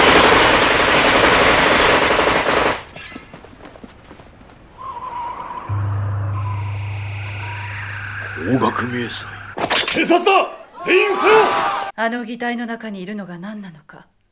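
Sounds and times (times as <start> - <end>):
heavy automatic gunfire through a window: 0.0 - 2.9
steady electronic hum: 5.7 - 9.6
speech: 8.8 - 14.1.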